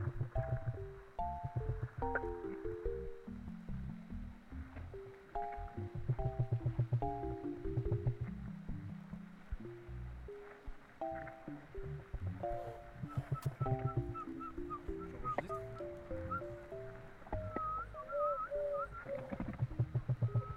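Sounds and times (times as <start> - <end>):
low rumbling background: 0.0 - 20.5
two birds trading whistled and chirping calls: 12.4 - 19.6.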